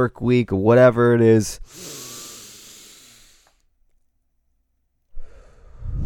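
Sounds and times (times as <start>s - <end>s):
speech: 0.0s - 2.0s
deep breathing during a guided relaxation exercise: 1.6s - 3.6s, 5.1s - 6.0s.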